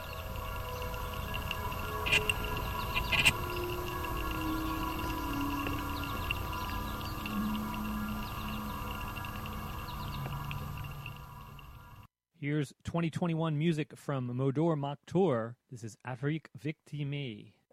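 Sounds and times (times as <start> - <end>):
birds singing in blossoming spring woods: 0.0 - 12.1
speech: 12.5 - 17.6.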